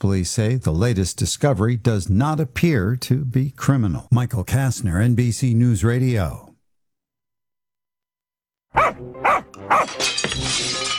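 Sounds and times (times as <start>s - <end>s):
speech: 0.0s - 6.5s, 9.0s - 10.9s
dog barking: 8.7s - 10.0s
breaking glass crashing and rattling: 9.5s - 10.9s.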